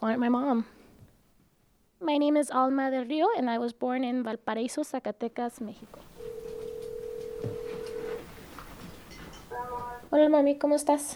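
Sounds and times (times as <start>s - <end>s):
speech: 0.0s - 0.8s, 2.0s - 6.1s, 10.1s - 11.1s
steady clear electronic telephone line tone: 6.0s - 10.1s.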